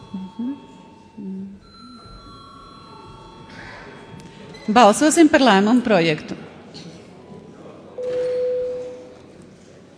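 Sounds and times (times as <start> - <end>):
parliament voting bell ringing in a continuous electronic tone: 0.0 - 5.4, 8.0 - 9.1
speech: 4.7 - 6.4.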